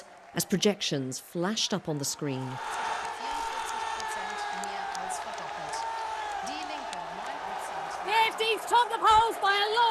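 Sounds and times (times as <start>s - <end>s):
speech: 0.4s - 2.9s
crowd roaring at an election event in Saxony-Anhalt Germany: 2.3s - 9.8s
excited shouts and whoops: 2.6s - 9.8s.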